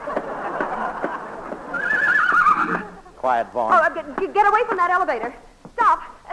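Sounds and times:
laughter: 0.0 - 4.6
horse neighing: 1.7 - 3.0
speech: 3.2 - 6.1.

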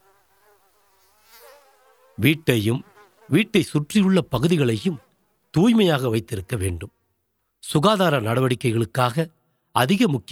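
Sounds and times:
high thin mosquito whine: 0.0 - 5.1
speech: 2.2 - 7.0, 7.6 - 10.2.

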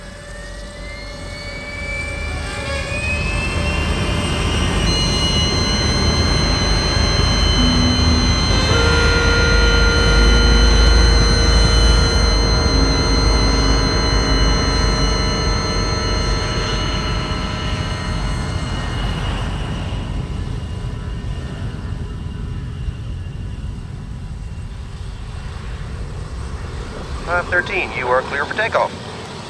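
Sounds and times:
jet engines of two A-10 Warthog attack planes roaring: 0.0 - 29.4.

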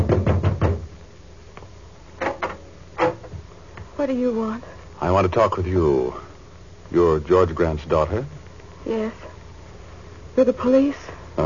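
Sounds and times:
firm knocking on a door: 0.0 - 1.0
speech: 4.0 - 6.3, 6.9 - 9.3, 10.4 - 11.4.

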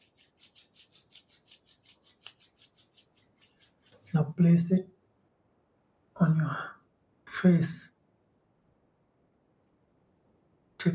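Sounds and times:
palms of the hands rubbed briskly together to warm them: 0.0 - 4.4
speech: 4.1 - 5.0, 7.4 - 7.9.

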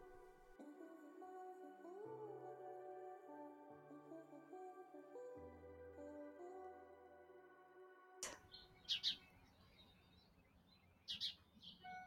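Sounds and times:
gentle music: 0.0 - 12.0
birds chirping in a backyard: 8.2 - 12.0.

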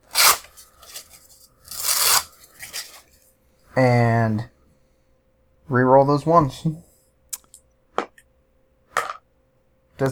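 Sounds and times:
paper or card ripped up during a tabletop dice game: 0.0 - 3.1
speech: 3.8 - 4.5, 5.7 - 6.9.

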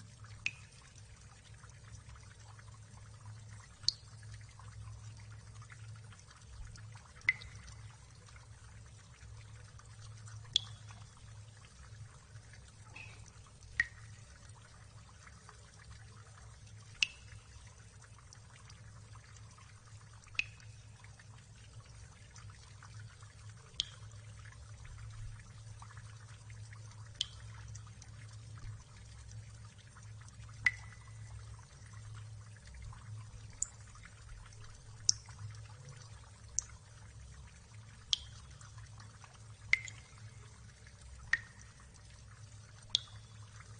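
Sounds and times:
low steady hum: 0.0 - 43.7
water drops plinking: 0.4 - 1.0, 3.8 - 4.2, 7.2 - 8.0, 10.4 - 11.2, 12.6 - 14.3, 16.9 - 17.6, 20.3 - 21.1, 23.7 - 24.2, 27.2 - 28.3, 30.5 - 31.4, 33.5 - 33.9, 38.0 - 38.6, 39.6 - 40.6, 41.2 - 41.8, 42.8 - 43.6.

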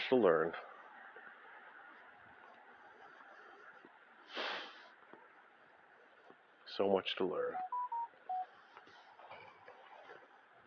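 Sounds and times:
speech: 0.1 - 0.7, 6.8 - 7.7
phone notification beeps: 7.6 - 8.5.

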